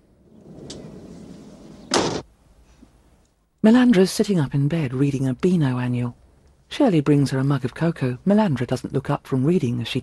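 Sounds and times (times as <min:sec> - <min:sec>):
faint low rustling: 0:00.0 - 0:03.5
front door being shut by hand in a hallway: 0:00.2 - 0:02.3
speech: 0:03.6 - 0:10.0.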